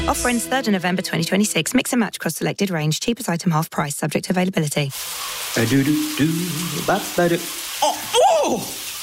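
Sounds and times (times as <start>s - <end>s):
speech: 0.1s - 8.8s
cold shower spray hissing: 4.9s - 9.0s
person gasping and yelping: 7.8s - 8.8s.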